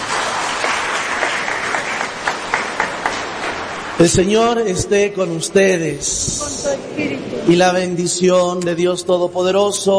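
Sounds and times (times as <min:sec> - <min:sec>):
room full of people applauding raffle winner: 0:00.0 - 0:04.0
speech: 0:04.0 - 0:09.9.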